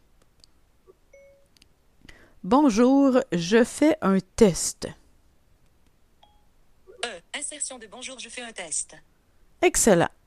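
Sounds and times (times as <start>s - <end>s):
hiss: 0.0s - 3.3s, 3.9s - 10.2s
phone electronic ding as voice dictation starts: 1.1s - 1.5s, 6.2s - 6.5s
speech: 2.4s - 5.0s, 7.6s - 10.2s.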